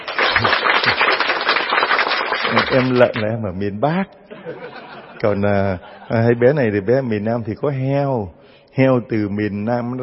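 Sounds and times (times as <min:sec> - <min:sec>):
crowd applauding: 0:00.0 - 0:03.2
speech: 0:02.7 - 0:10.0
laughter: 0:04.3 - 0:06.5.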